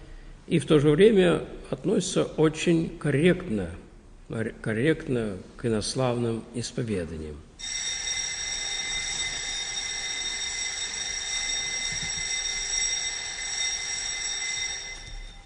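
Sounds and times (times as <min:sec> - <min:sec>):
speech: 0:00.5 - 0:07.9
class bell ringing electrically: 0:07.6 - 0:15.4.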